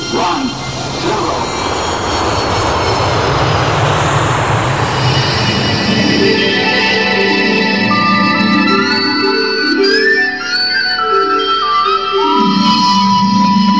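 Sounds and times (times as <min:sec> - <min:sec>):
spaceship taking off with loud steady engine roar: 0:00.0 - 0:10.4
high whining tones of a spaceship taking off: 0:00.0 - 0:13.7.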